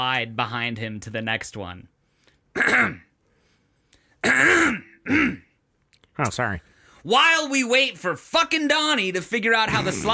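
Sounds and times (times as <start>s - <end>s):
speech: 0.0s - 1.9s, 2.6s - 3.1s, 4.3s - 5.4s, 6.2s - 10.1s
man clearing his throat at a presentation: 2.6s - 3.1s, 4.2s - 5.6s.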